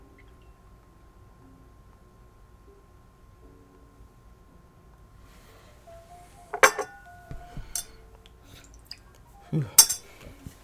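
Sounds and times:
whiskey glass clinking and knocking while being rinsed and stirred: 6.5 - 8.0, 9.6 - 10.3
whiskey glass rattling: 6.5 - 8.0, 9.8 - 10.2.

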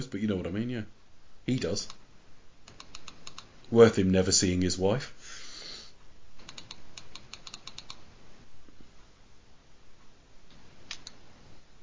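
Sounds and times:
speech: 0.1 - 2.0, 3.7 - 5.2
typing on a computer keyboard: 2.7 - 3.5, 6.4 - 8.0.

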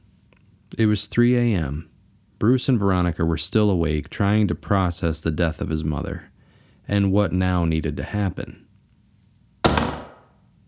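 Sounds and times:
speech: 0.7 - 6.3, 6.9 - 8.6
heavy door slamming shut: 9.7 - 10.2.

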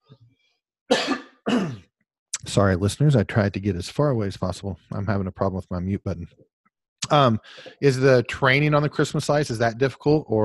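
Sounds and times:
harsh coughs: 0.9 - 1.9
speech: 2.5 - 6.5, 7.1 - 10.4.

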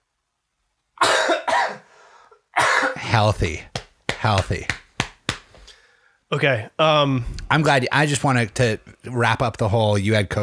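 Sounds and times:
person coughing: 1.0 - 1.9, 2.6 - 3.1
raspy breath: 1.8 - 2.4, 5.6 - 6.3
speech: 3.2 - 4.8, 6.3 - 10.4.

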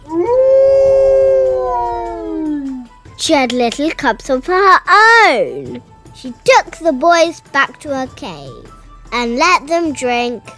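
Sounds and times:
she-wolf howling: 0.0 - 3.0
speech: 3.2 - 10.5.

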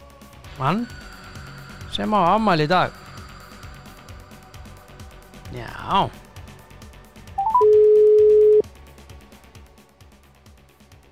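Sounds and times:
speech: 0.6 - 1.1, 1.9 - 3.0, 5.9 - 6.2
telephone dialling beeps rising in pitch: 7.4 - 8.6
telephone ringing tone: 7.4 - 8.6.

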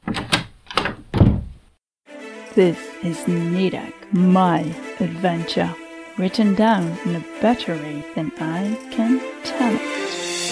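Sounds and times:
door knob rattling and turning with metallic clicks: 0.0 - 1.4
door on the bottom level of a building swinging open with a creaking thud: 0.0 - 1.6
speech: 2.6 - 10.0.

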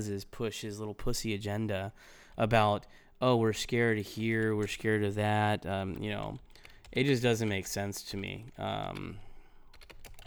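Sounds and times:
speech: 0.0 - 9.2
typing on a computer keyboard: 5.9 - 10.2.

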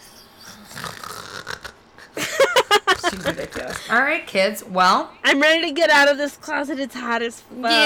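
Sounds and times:
raspy snoring with rhythmic snorts: 0.0 - 2.2, 2.8 - 4.0
laughter: 2.0 - 4.0
speech: 3.1 - 7.8.

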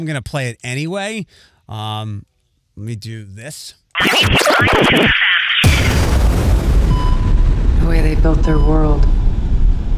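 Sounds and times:
speech: 0.0 - 5.1, 7.9 - 9.2
crackling distorted rapid hits in video game console teaser trailer: 4.0 - 8.3
heavy boom and deep sustained rumble in video game console teaser trailer: 5.6 - 9.9.

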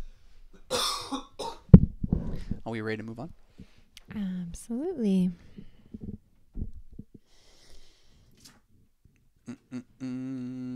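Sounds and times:
raspy coughs: 0.6 - 1.7
speech: 2.7 - 3.4, 4.2 - 5.5, 9.7 - 10.6.

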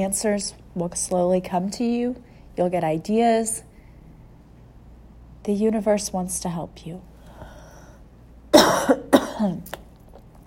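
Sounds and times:
speech: 0.0 - 3.7, 5.4 - 7.1, 9.4 - 9.8
raspy coughs: 8.5 - 9.7.

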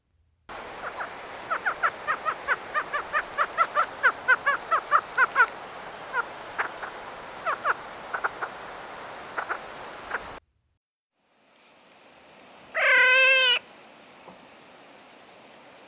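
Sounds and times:
Ruffed Grouse rapid harsh notes: 0.5 - 10.4.

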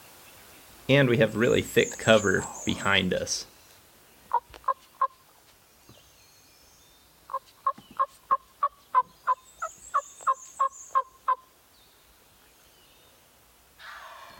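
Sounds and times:
speech: 0.9 - 3.5
wild turkey tree yelping from its roost: 4.3 - 5.2, 7.3 - 11.5, 13.8 - 14.3.

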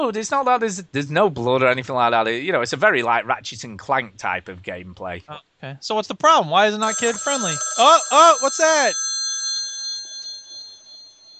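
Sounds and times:
speech: 0.0 - 9.1
telephone ringing with a high electronic tone: 6.8 - 11.3.

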